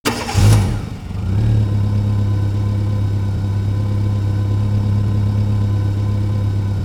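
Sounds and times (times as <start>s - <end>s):
car starting and idling: 0.0s - 6.8s.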